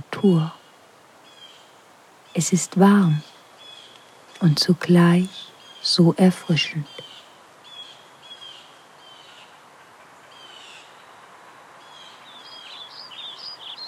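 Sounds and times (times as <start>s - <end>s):
hiss: 0.0s - 13.8s
speech: 0.2s - 0.6s, 2.4s - 3.3s, 4.4s - 7.1s
birds singing softly: 0.2s - 11.2s, 11.8s - 13.8s.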